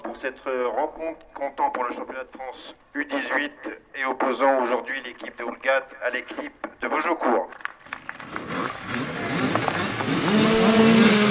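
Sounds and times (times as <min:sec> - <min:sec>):
speech: 0:00.2 - 0:07.7
crowd-like noise: 0:07.8 - 0:11.2
motoball motorcycle engines revving and whining in the open air: 0:07.8 - 0:11.2.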